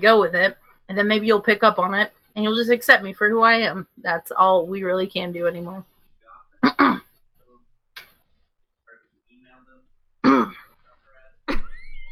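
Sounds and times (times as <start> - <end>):
speech: 0.0 - 5.9, 6.6 - 7.1
person clearing throat: 6.6 - 7.1, 10.2 - 10.8.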